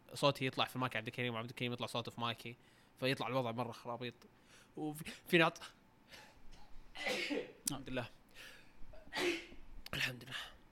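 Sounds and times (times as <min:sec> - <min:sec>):
speech: 0:00.2 - 0:06.3, 0:07.0 - 0:08.5, 0:09.1 - 0:10.6
person sneezing: 0:06.2 - 0:07.6, 0:08.9 - 0:09.6.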